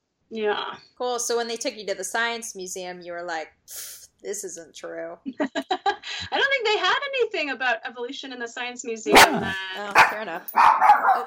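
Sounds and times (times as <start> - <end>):
speech: 0.3 - 11.2
laughter: 5.3 - 6.2
dog barking: 9.1 - 11.2.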